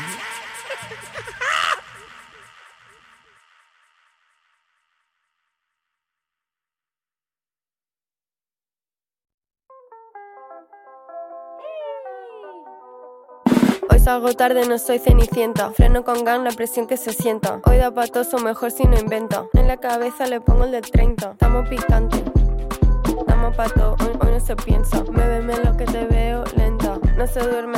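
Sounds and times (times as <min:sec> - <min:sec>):
laughter: 0:00.0 - 0:03.4
speech: 0:00.8 - 0:01.4, 0:13.8 - 0:22.8, 0:23.4 - 0:26.6, 0:27.2 - 0:27.7
cat meowing: 0:11.6 - 0:12.7.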